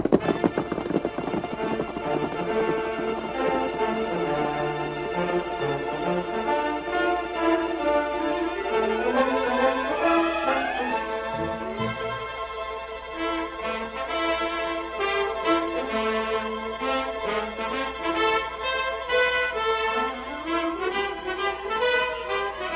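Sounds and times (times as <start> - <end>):
horse hooves galloping: 0.0 - 22.7
loud sweeping orchestral music: 0.3 - 22.7.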